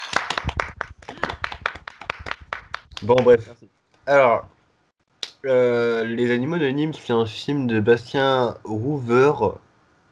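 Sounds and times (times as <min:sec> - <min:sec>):
group clapping at a recovery meeting: 0:00.0 - 0:03.5
speech: 0:03.0 - 0:04.5, 0:05.4 - 0:09.6.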